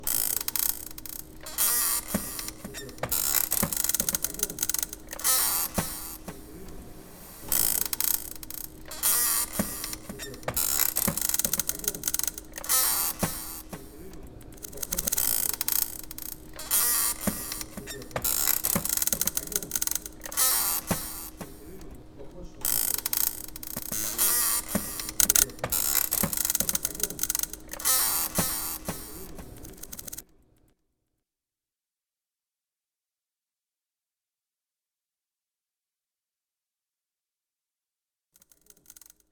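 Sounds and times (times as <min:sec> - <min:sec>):
chair: 0:00.0 - 0:30.2.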